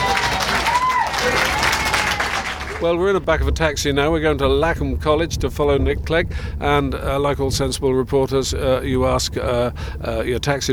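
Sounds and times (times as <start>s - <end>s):
small outdoor crowd applauding: 0.0s - 3.2s
speech: 2.8s - 10.7s.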